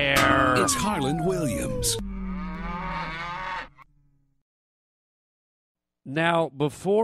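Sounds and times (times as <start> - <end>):
low hum: 0.0 - 4.3
cow mooing: 0.1 - 4.0
speech: 0.6 - 2.1, 6.1 - 7.0.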